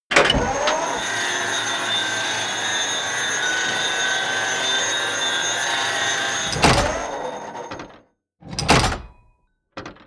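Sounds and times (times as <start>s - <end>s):
large tank turret rotating: 0.1s - 8.0s.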